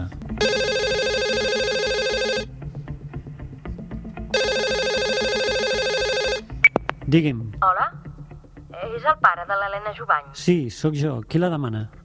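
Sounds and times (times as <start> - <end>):
telephone ringing with an electronic tone for an incoming evening call: 0.4 - 2.5, 4.3 - 6.6
speech: 7.1 - 8.0, 8.8 - 12.0.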